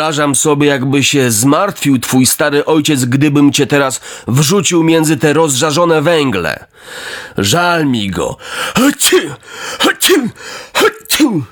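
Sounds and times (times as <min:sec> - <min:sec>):
speech: 0:00.0 - 0:11.4
person sneezing: 0:09.1 - 0:11.4.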